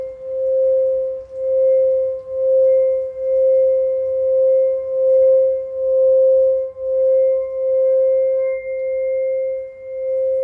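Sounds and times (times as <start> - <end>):
Tibetan singing bowl ringing with mid-pitched tone and higher overtones: 0.0 - 10.4.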